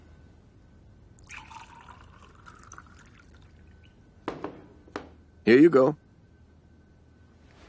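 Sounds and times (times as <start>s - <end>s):
glassware clinking and tapping: 1.2s - 3.4s
water pouring into a glass at a court hearing: 1.2s - 4.0s
speech: 5.5s - 6.0s.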